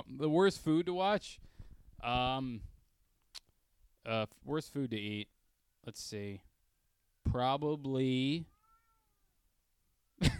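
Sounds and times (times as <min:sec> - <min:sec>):
speech: 0:00.1 - 0:02.7, 0:04.0 - 0:06.5, 0:07.2 - 0:08.5
cat meowing loudly: 0:08.5 - 0:09.3.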